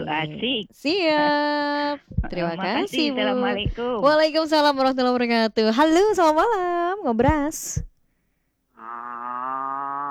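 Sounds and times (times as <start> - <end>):
speech: 0.0 - 7.9
loose cow refusing to go back into its pen mooing: 8.8 - 10.0.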